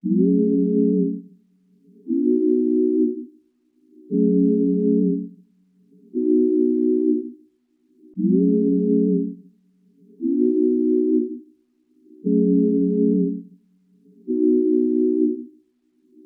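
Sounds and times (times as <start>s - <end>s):
synth pad loop in C minor at 118 BPM: 0.0s - 1.3s, 1.9s - 3.3s, 4.0s - 5.4s, 6.0s - 7.4s, 8.1s - 9.4s, 10.1s - 11.4s, 12.1s - 13.4s, 14.0s - 15.5s.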